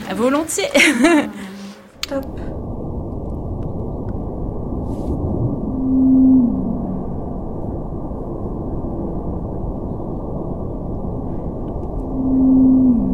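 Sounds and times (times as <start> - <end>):
speech: 0.1 - 2.6
laughter: 0.7 - 1.6
constant low rumbling underwater noise floor: 1.0 - 13.1
sped-up Antarctic blue whale calls: 4.8 - 10.2, 11.2 - 13.1.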